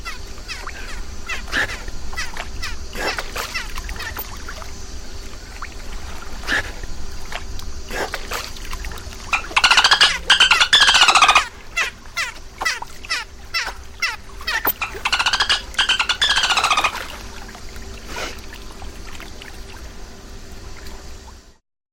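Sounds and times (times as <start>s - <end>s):
dolphin squeaking calls at night: 9.3s - 17.1s.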